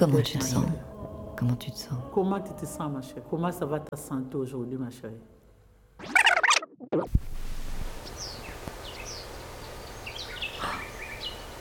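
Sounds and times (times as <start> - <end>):
speech: 0.0 - 5.3, 6.9 - 7.4
steady hiss: 7.2 - 11.5
birds chirping outdoors at a grotto in Brussels Belgium: 7.9 - 11.5.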